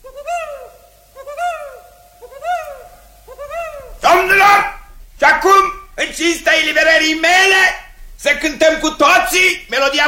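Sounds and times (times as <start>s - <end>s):
small birds chirping in a forest clearing: 0.0s - 5.0s
speech: 6.2s - 10.0s.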